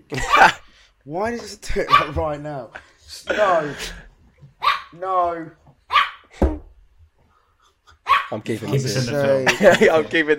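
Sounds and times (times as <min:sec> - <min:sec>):
speech: 0:00.1 - 0:05.6, 0:08.3 - 0:10.3
dog barking with short sharp barks: 0:01.9 - 0:02.2, 0:04.6 - 0:05.0, 0:05.9 - 0:06.3, 0:08.0 - 0:08.4
dog yowling: 0:04.6 - 0:05.0, 0:05.9 - 0:06.3
laughter: 0:08.7 - 0:10.3.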